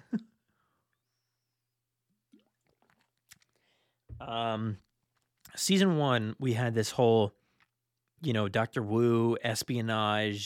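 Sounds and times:
sipping and swallowing from a drink: 2.3 - 3.7
speech: 4.2 - 4.9, 5.6 - 7.4, 8.2 - 10.4.

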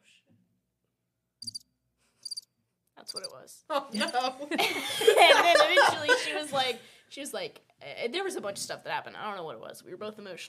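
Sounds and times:
crickets chirping in short high-pitched trills: 2.2 - 2.4
speech: 3.1 - 10.4
laughter: 4.0 - 6.8.

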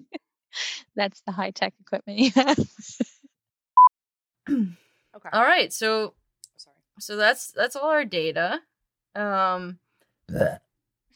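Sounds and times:
speech: 1.0 - 3.2, 4.5 - 10.6
burp: 10.3 - 10.7.

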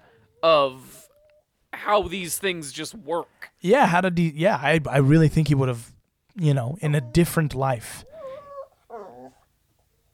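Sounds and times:
speech: 1.8 - 8.1
dog whimpering: 7.0 - 9.5.

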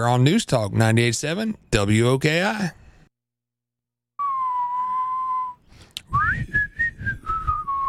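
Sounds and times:
speech: 0.0 - 2.8
person whistling a tune: 4.2 - 7.8.

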